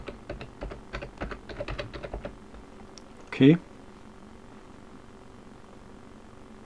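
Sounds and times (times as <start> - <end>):
password typed on a computer keyboard: 0.0 - 2.4
speech: 3.4 - 3.7.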